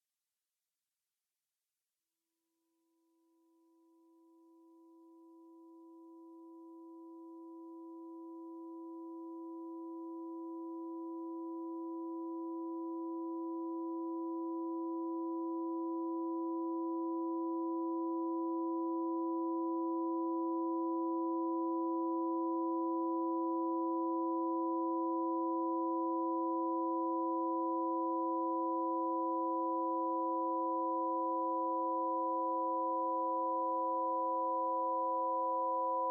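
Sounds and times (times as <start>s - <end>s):
sine wave quartet: 2.8s - 36.0s.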